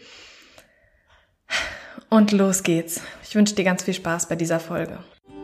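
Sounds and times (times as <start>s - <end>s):
deep breath in: 0.0s - 2.0s
speech: 2.1s - 5.2s.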